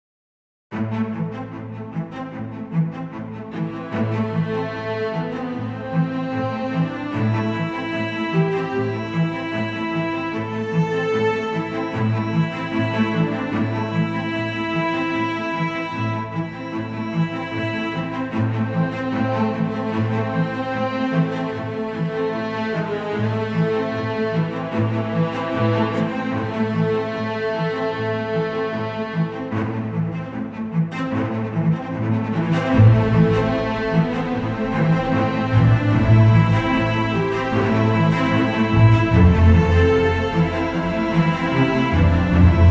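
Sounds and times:
cinematic strings: 0.7 - 42.6.

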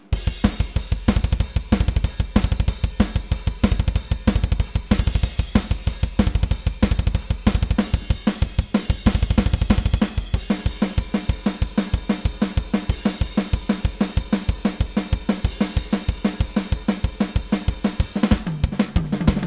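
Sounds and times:
Pearl Masterworks drums playing metal: 0.2 - 19.4.

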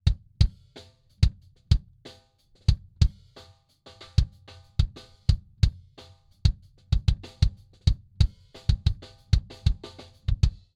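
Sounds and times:
drum kit kick drum solo in front of the sound hole: 0.0 - 2.0, 2.7 - 3.3, 4.2 - 10.7.

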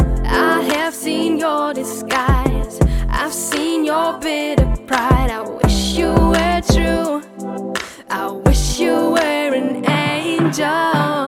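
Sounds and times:
beat: 0.0 - 1.0, 2.1 - 3.8, 4.6 - 7.1, 7.8 - 11.2
vocals: 0.0 - 11.2.

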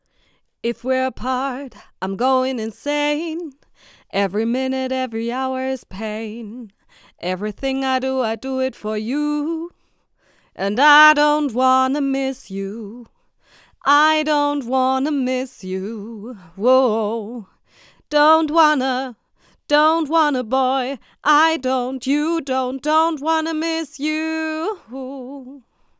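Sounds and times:
woman singing: 0.6 - 25.9.

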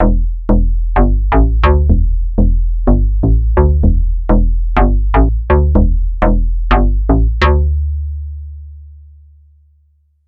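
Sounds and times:
FM synthesis showcase: 0.0 - 7.7.

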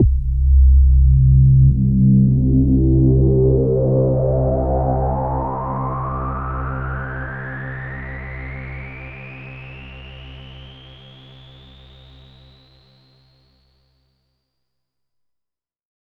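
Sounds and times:
rising filtered stereo delay effect: 0.0 - 6.4.

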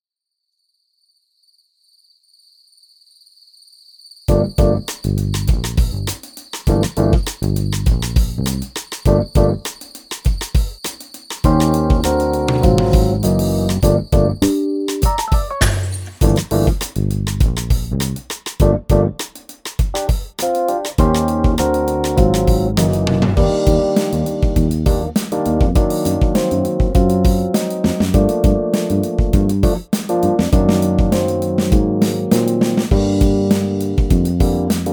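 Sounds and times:
Rhodes electric piano: 4.3 - 4.9, 6.7 - 7.3, 9.1 - 9.7, 11.4 - 16.8, 18.6 - 19.2, 20.0 - 34.9
Jazz bass guitar: 4.3 - 9.6, 11.5 - 14.6, 15.6 - 19.2, 21.0 - 34.9
drums: 4.3 - 34.9.

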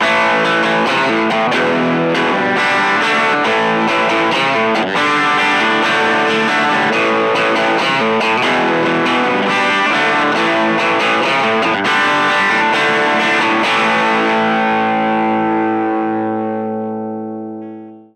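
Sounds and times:
overdriven guitar with mid tone: 0.0 - 18.1.

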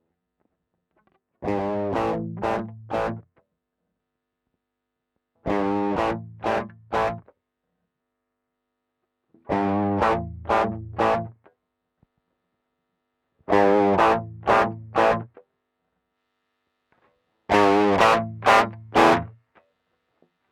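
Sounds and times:
guitar tone through Ibanez TS-808 overdrive pedal: 1.4 - 3.3, 5.5 - 7.3, 9.4 - 11.4, 13.5 - 15.4, 17.5 - 19.4.

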